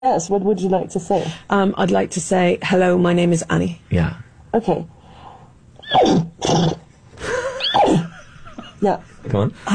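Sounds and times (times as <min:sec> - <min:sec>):
speech: 0:00.0 - 0:05.0, 0:05.9 - 0:06.8, 0:08.8 - 0:09.7
woman imitating a horse's whinny: 0:07.6 - 0:08.1.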